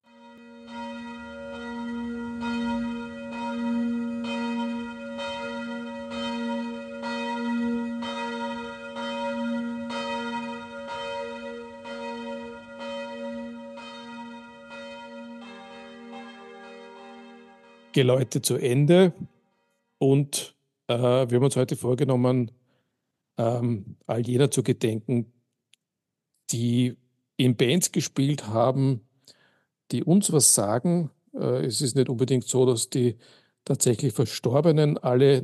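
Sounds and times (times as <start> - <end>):
church bell ringing: 0.0 - 19.7
speech: 18.0 - 19.3, 20.0 - 22.6, 23.4 - 25.4, 26.5 - 29.1, 29.9 - 35.4.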